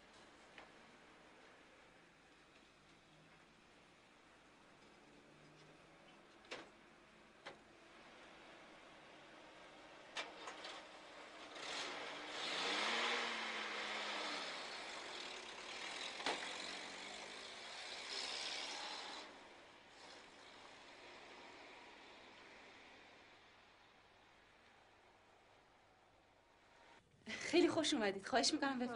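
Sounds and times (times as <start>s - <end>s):
road and wind noise of a car driving on the Karaj highway: 0.0s - 26.9s
car engine revving on the Karaj highway: 11.4s - 19.3s
speech: 27.5s - 28.9s.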